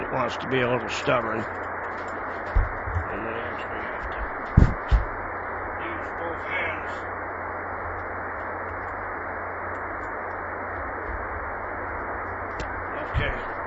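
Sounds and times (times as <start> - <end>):
static hiss from an HF radio receiver with its antenna reconnected: 0.0 - 13.6
speech: 0.2 - 2.6.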